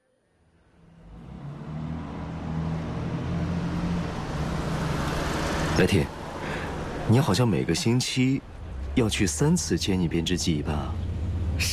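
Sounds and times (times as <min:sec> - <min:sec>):
car engine rumble while being driven: 0:00.7 - 0:11.7
speech: 0:05.8 - 0:06.2, 0:07.1 - 0:11.0, 0:11.6 - 0:11.7.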